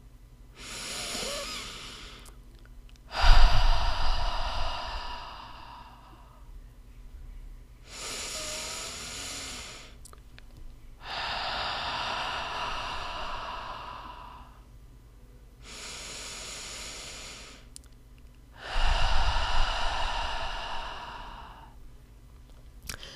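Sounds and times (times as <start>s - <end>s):
slow deep breaths in through the nose and out through the mouth: 0.6s - 2.4s, 3.1s - 6.5s, 7.8s - 10.0s, 11.0s - 14.7s, 15.6s - 17.7s, 18.5s - 21.8s, 22.9s - 23.1s.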